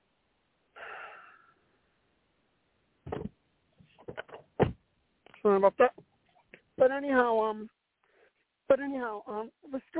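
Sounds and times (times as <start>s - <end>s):
breathy gasp-like burst: 0.8s - 1.8s
loud door thump: 3.0s - 3.4s, 4.0s - 4.8s
speech: 5.4s - 6.0s, 6.8s - 7.8s, 8.7s - 9.9s.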